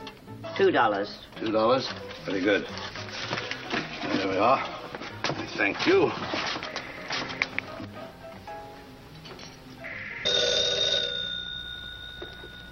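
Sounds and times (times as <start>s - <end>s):
speech: 0.6s - 2.9s, 4.2s - 4.8s, 5.6s - 6.4s
telephone bell ringing: 9.8s - 12.6s.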